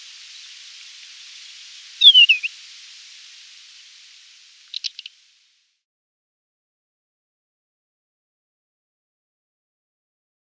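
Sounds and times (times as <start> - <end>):
background hiss: 0.0 - 5.7
desert wheatear clicking notes: 2.0 - 2.5, 4.7 - 5.1
desert wheatear singing descending warbled phrase: 2.0 - 2.5.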